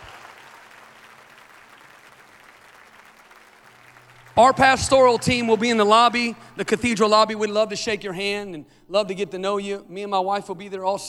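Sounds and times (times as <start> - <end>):
large crowd applauding: 0.0 - 6.5
speech: 4.4 - 11.0.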